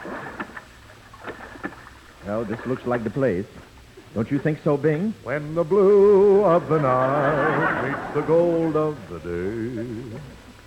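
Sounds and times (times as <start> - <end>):
oars rowing a boat through water: 0.0 - 3.9
steady watery wash: 0.0 - 10.6
speech: 2.3 - 10.4
laughter: 6.5 - 10.3.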